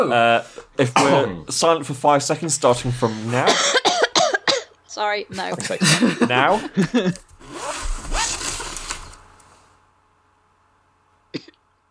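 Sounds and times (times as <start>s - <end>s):
speech: 0.0s - 3.8s, 5.0s - 7.3s
laughter: 5.3s - 7.3s
clothing zipper being zipped: 7.4s - 9.4s.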